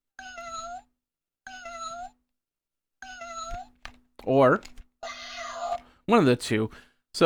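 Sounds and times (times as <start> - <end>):
kitten meowing: 0.2 - 0.8, 1.5 - 2.1, 3.0 - 3.8, 5.0 - 5.8
speech: 4.2 - 4.8, 6.1 - 7.2.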